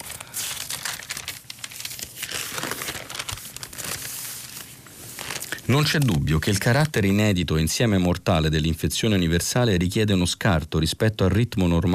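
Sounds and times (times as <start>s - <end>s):
newspaper pages rustling and being turned: 0.0s - 7.0s
speech: 5.7s - 11.9s.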